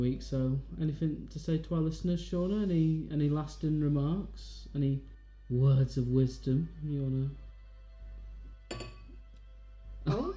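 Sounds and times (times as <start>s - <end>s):
speech: 0.0s - 7.4s
glasses clinking in a toast: 8.7s - 9.3s.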